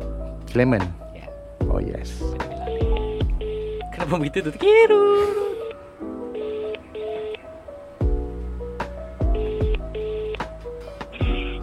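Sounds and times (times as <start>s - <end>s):
speech: 0.5s - 1.0s, 1.6s - 2.8s, 4.0s - 5.5s
deep thumping bass hits: 1.6s - 3.6s, 8.0s - 8.4s, 9.2s - 9.9s
electronic phone dialing tones: 2.5s - 4.0s, 5.0s - 7.5s, 9.2s - 10.5s, 11.1s - 11.6s.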